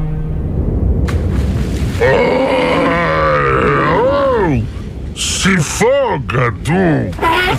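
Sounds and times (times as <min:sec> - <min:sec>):
low rumbling background: 0:00.0 - 0:07.5
bear growling: 0:02.0 - 0:04.6
speech: 0:05.4 - 0:07.5.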